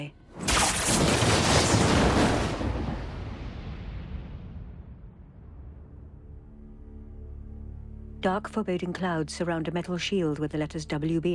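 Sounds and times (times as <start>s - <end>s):
speech: 0.0s - 0.2s, 8.2s - 11.3s
massive magical energy blast shooting from a wand: 0.4s - 5.5s.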